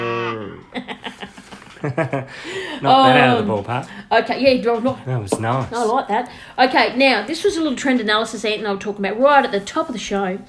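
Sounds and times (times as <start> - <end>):
cow mooing: 0.0 - 0.7
laughter: 0.6 - 3.6
speech: 1.8 - 10.4.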